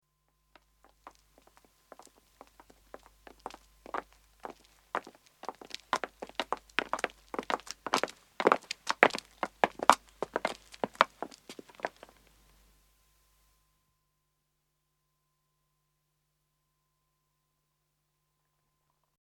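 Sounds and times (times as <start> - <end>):
footsteps of two men and two women walking on pavement: 0.6 - 12.4.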